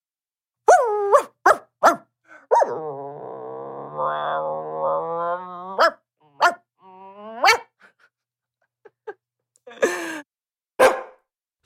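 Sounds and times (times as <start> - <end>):
dog barking: 1.1 - 2.7, 5.8 - 6.6, 7.4 - 7.7, 10.8 - 11.2
dog growling whine: 2.3 - 7.7.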